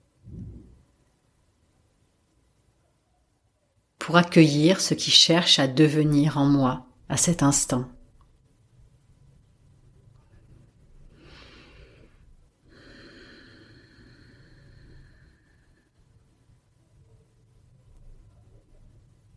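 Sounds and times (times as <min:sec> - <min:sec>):
low steady hum: 0:00.0 - 0:19.3
speech: 0:04.1 - 0:08.0
deep breathing during meditation: 0:11.1 - 0:16.2.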